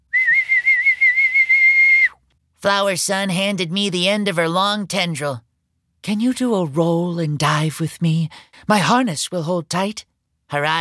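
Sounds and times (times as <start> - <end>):
man whistling: 0.0 - 2.2
speech: 2.6 - 10.7.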